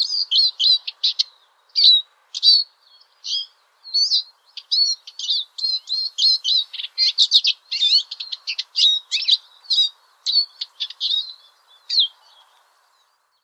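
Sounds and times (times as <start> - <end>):
European greenfinch song: 0.0 - 13.4.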